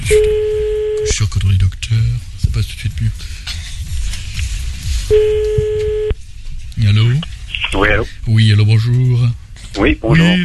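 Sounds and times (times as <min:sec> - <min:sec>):
low rhythmic patter of a telephone call being placed: 0:00.0 - 0:10.4
speech: 0:00.1 - 0:00.3, 0:01.2 - 0:04.2, 0:05.1 - 0:05.5, 0:07.9 - 0:10.4
steady electronic telephone line tone: 0:00.1 - 0:01.2, 0:05.1 - 0:06.2.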